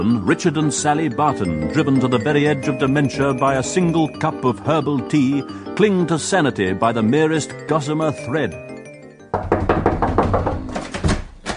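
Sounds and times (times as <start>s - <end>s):
speech: 0.0s - 8.7s
loud knocking on a door: 9.3s - 11.5s.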